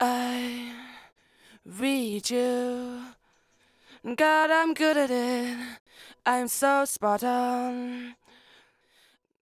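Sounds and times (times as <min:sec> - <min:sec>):
lead vocal singing a verse: 0:01.6 - 0:03.2, 0:04.0 - 0:08.2.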